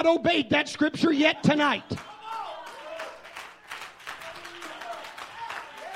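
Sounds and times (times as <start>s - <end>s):
speech: 0.0s - 2.1s
crowd of people clapping their hands: 1.9s - 5.9s.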